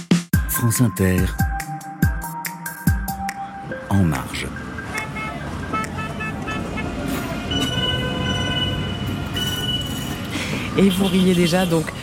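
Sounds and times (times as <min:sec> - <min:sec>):
speech: 0:00.6 - 0:01.5, 0:03.9 - 0:04.6, 0:10.8 - 0:12.0
steady roar of traffic at Barbès: 0:02.9 - 0:12.0
metro train passing with wheels squealing: 0:07.4 - 0:10.7.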